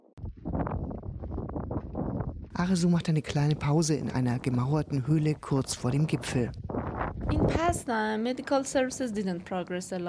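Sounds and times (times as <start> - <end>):
strong wind buffeting the microphone on a climb in a barren landscape: 0.2 - 8.2
speech: 2.6 - 6.6, 7.3 - 10.0.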